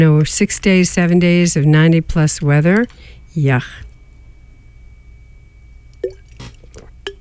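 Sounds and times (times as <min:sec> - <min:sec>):
speech: 0:00.0 - 0:03.9
person drinking water with gulps and swallowing clicks: 0:06.0 - 0:07.2.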